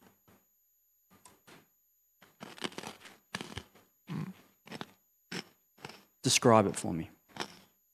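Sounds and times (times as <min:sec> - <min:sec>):
biting and chewing a crunchy chocolate-coated sweet: 0:02.2 - 0:06.1, 0:07.3 - 0:07.6
speech: 0:06.2 - 0:07.2.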